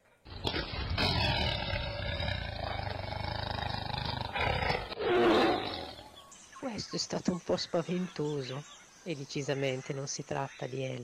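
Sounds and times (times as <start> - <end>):
tiger roaring with deep rumbling growl: 0.3 - 6.1
speech: 6.8 - 11.0.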